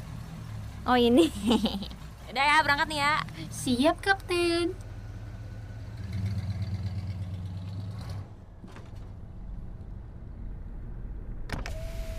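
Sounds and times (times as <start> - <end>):
low car engine rumble: 0.0 - 12.1
speech: 0.8 - 4.8
laughter: 1.2 - 2.0
car power window whirring downward: 11.5 - 12.1.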